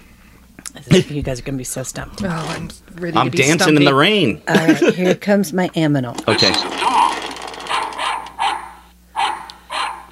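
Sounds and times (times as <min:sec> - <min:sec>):
speech: 0:00.9 - 0:06.8
laughter: 0:04.5 - 0:05.3
dog barking: 0:07.7 - 0:10.1.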